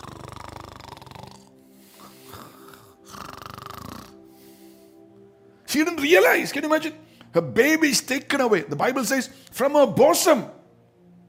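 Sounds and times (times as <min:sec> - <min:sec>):
woman snoring: 0:00.0 - 0:05.0
speech: 0:05.7 - 0:10.6.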